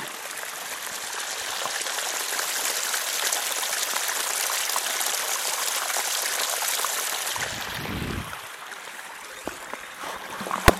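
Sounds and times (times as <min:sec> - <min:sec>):
water trickling down from fields: 0:00.0 - 0:10.6
small splashes and knocks: 0:09.4 - 0:10.7.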